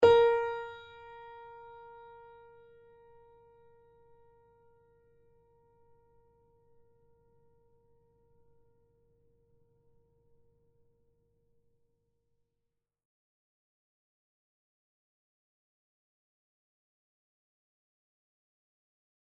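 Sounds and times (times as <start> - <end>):
piano note B flat 4: 0.0 - 4.1.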